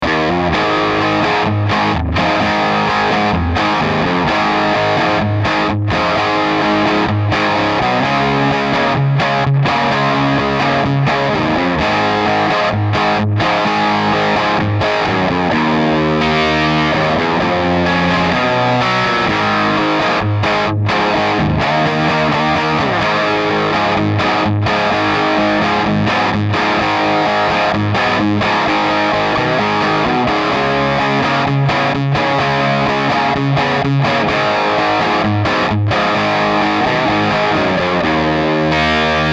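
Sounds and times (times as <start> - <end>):
rock music with multi-effects: 0.0 - 39.3.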